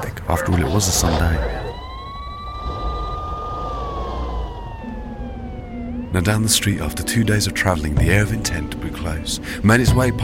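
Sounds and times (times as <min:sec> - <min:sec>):
low rumble of traffic: 0:00.0 - 0:08.8
speech: 0:00.3 - 0:01.6, 0:06.2 - 0:10.2
police car siren wailing: 0:00.4 - 0:07.9.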